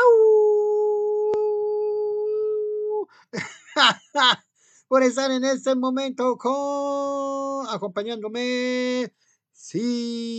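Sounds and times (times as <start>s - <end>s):
person howling like a wolf: 0.0s - 3.1s
speech: 3.3s - 10.3s.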